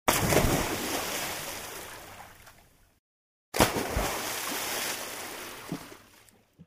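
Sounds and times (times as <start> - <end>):
splash of a jump into water: 0.1 - 2.6, 3.6 - 6.1.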